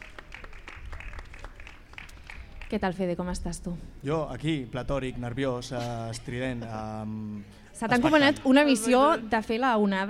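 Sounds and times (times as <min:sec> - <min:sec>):
audience applause at a live event: 0:00.0 - 0:02.7
speech: 0:02.7 - 0:10.0.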